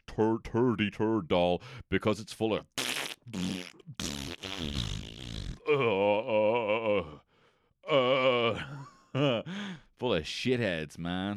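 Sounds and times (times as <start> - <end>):
speech: 0.2 - 5.1, 5.7 - 7.2, 9.2 - 11.3
mouth fart noises: 2.8 - 5.7.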